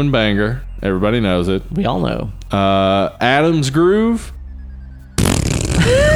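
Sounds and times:
speech: 0.0s - 4.4s
sputtering raspberry fart noise blown with the mouth: 5.2s - 5.9s.

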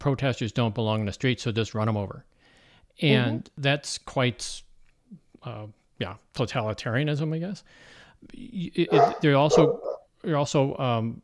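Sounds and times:
speech: 0.0s - 2.4s, 3.0s - 11.2s
Rottweiler guard dog barking deeply: 8.9s - 10.1s.

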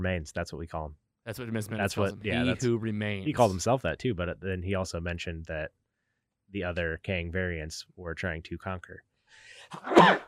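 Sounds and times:
speech: 0.0s - 5.8s, 6.5s - 10.2s
person sneezing: 9.6s - 10.2s.

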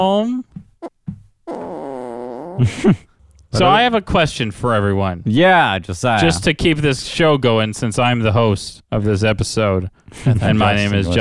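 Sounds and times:
speech: 0.0s - 1.0s, 2.6s - 11.1s
fart sounds: 0.8s - 2.8s.

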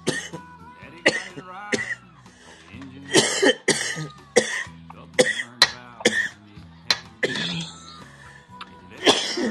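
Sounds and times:
person coughing heavily: 0.1s - 0.4s, 1.0s - 2.0s, 3.1s - 6.4s, 7.2s - 7.8s, 9.0s - 9.5s
short wheezy breaths: 2.2s - 2.8s, 7.9s - 8.6s.

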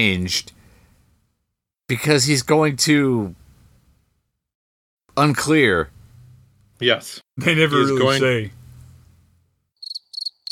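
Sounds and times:
speech: 0.0s - 0.6s, 1.9s - 3.4s, 5.2s - 6.0s, 6.8s - 8.6s
crickets chirping: 9.8s - 10.5s.

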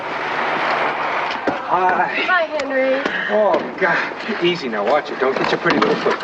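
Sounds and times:
vehicle engine running: 0.0s - 3.1s
speech: 1.7s - 6.2s.

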